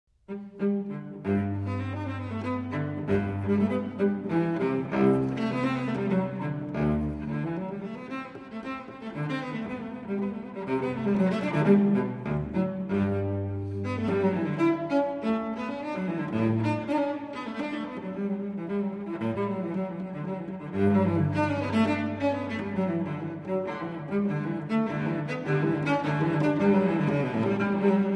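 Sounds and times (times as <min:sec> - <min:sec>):
unaccompanied cello courante: 0:00.1 - 0:28.1.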